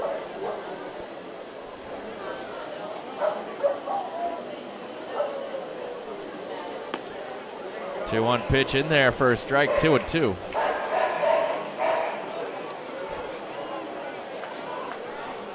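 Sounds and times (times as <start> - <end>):
crowd murmur and chatter in a large open space: 0.0 - 15.5
several dogs barking in short bursts: 3.2 - 4.1, 9.6 - 12.5
speech: 8.1 - 10.6.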